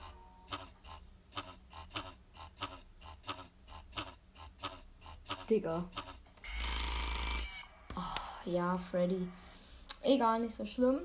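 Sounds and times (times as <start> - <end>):
buzzy rattling pulses: 0.0 - 7.7
speech: 5.5 - 6.0, 8.0 - 9.4, 10.0 - 11.0.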